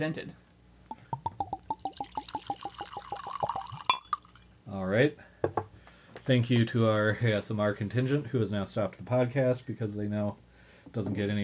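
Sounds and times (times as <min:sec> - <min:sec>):
speech: 0:00.0 - 0:00.4, 0:04.7 - 0:05.3, 0:06.3 - 0:11.4
brief bright glassy tap: 0:00.9 - 0:04.2
Scotch whisky glugging from a bottle into a glass: 0:00.9 - 0:04.4.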